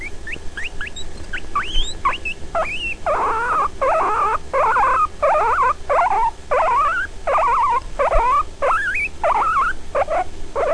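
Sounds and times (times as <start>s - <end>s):
hurt guinea pig: 0.0s - 10.7s.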